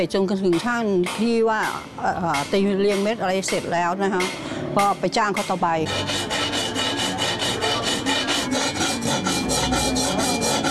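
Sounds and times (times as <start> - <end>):
speech: 0.0 - 6.4
hand filing with a metal file: 2.4 - 10.6.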